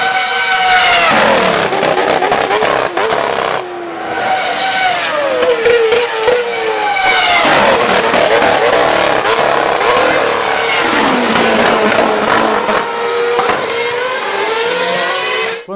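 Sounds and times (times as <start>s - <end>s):
racing car exhaust crackling and popping off-throttle: 0.0s - 3.7s, 5.1s - 14.5s
racing car engine howling and slowing for braking: 0.0s - 15.7s.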